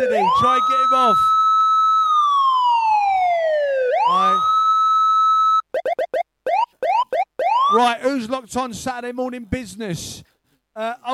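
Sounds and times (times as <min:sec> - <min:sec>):
speech: 0:00.0 - 0:01.3, 0:07.8 - 0:11.1
police siren sound effect: 0:00.0 - 0:07.8.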